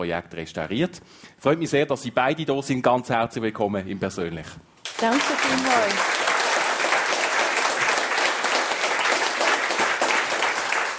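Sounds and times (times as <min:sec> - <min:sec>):
speech: 0:00.0 - 0:06.2
audience applause: 0:04.9 - 0:10.9.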